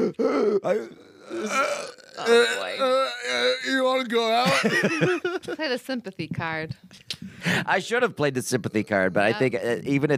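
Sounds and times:
person imitating choking and gasping for air: 0:00.0 - 0:04.6, 0:08.5 - 0:09.7
speech: 0:00.1 - 0:10.1
laughter: 0:04.3 - 0:05.7.

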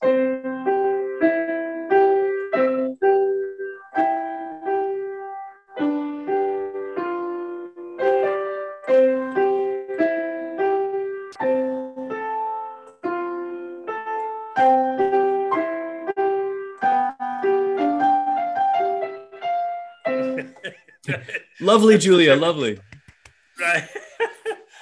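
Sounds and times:
simple piano melody played haltingly like a beginner child: 0:00.0 - 0:20.7
laughter: 0:20.2 - 0:22.0, 0:23.6 - 0:24.8
speech: 0:21.6 - 0:22.9.

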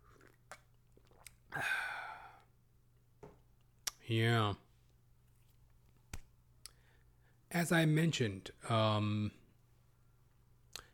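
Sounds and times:
swallow: 0:00.0 - 0:02.5
sipping water: 0:00.0 - 0:02.6
speech: 0:04.1 - 0:04.6, 0:07.6 - 0:09.4.

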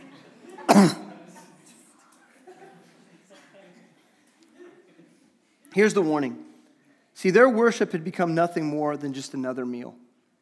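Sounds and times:
laughter: 0:00.0 - 0:05.4
person coughing while tearing up: 0:00.7 - 0:01.2
speech: 0:00.8 - 0:01.0, 0:05.8 - 0:06.4, 0:07.2 - 0:10.0.

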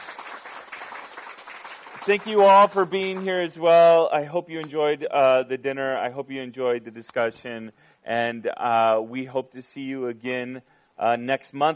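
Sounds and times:
audience applause: 0:00.0 - 0:03.3
speech: 0:02.0 - 0:11.7.

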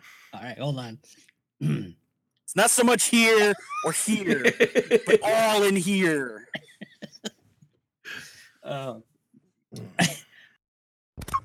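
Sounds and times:
speech: 0:00.4 - 0:06.7, 0:08.1 - 0:09.1
person hiccuping: 0:01.6 - 0:02.0
laughter: 0:03.4 - 0:07.4
short breathy huffs: 0:08.1 - 0:08.6.

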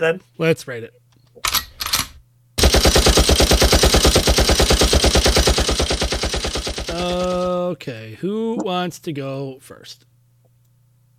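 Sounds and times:
speech: 0:00.0 - 0:01.0, 0:07.0 - 0:10.1
machine gun fire sound effect: 0:02.0 - 0:07.6.

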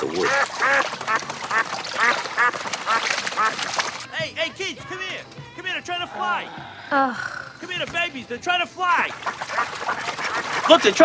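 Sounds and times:
ducks quacking: 0:00.0 - 0:03.8, 0:09.0 - 0:11.0
noisy outdoor background: 0:00.0 - 0:11.0
speech: 0:06.2 - 0:10.0, 0:10.7 - 0:11.0.

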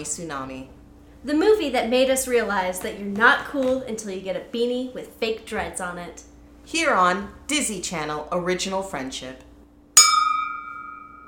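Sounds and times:
speech: 0:00.0 - 0:09.5
glasses clinking together in a toast: 0:10.0 - 0:11.2.

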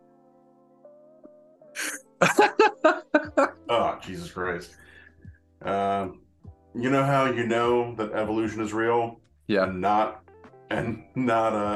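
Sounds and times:
man coughing after breathing in the wrong way: 0:01.8 - 0:03.5
laughter: 0:01.8 - 0:03.9, 0:10.7 - 0:11.2
speech: 0:02.2 - 0:03.0, 0:04.0 - 0:04.9, 0:05.6 - 0:06.2, 0:06.8 - 0:11.7
man gasping inhale after breathing in the wrong way: 0:04.8 - 0:05.4.

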